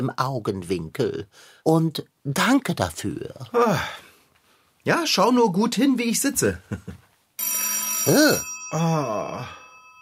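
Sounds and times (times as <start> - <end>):
speech: 0.0 - 4.1, 4.8 - 9.6
electronic telephone ringing with warbling melody: 7.4 - 10.0.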